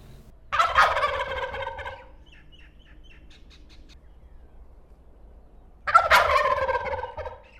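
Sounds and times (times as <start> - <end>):
wild turkey gobbling: 0.5 - 3.9, 5.8 - 7.5.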